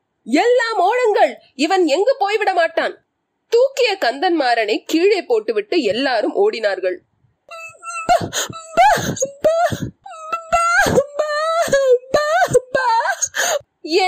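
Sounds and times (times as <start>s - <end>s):
speech: 0.2s - 10.0s, 13.9s - 14.0s
woman wailing in anguish and sobbing: 7.5s - 14.0s.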